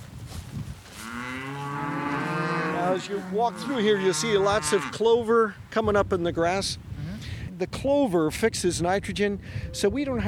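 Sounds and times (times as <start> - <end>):
cattle mooing on a farm: 1.0 - 5.1
speech: 3.0 - 6.9, 7.6 - 10.2.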